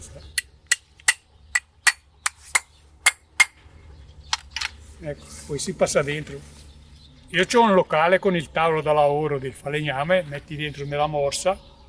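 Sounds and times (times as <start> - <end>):
hammer tapping: 0.7 - 3.6
speech: 5.0 - 6.6, 7.3 - 11.7.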